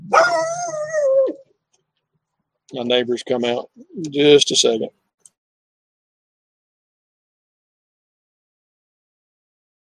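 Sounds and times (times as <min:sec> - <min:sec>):
dog bark-yowl: 0:00.0 - 0:01.4
speech: 0:02.7 - 0:05.0.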